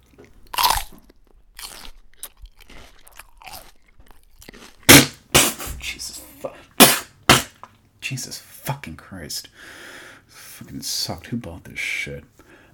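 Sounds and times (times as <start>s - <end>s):
quiet chewing of an apple: 0.0s - 5.2s
person biting into a fresh apple: 0.1s - 5.6s
speech: 8.1s - 10.0s, 10.6s - 12.4s.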